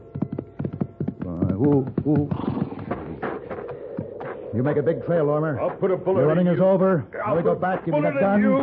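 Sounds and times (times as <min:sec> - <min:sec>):
horse hooves clip-clopping: 0:00.0 - 0:06.8
speech: 0:01.6 - 0:02.6, 0:04.5 - 0:08.6.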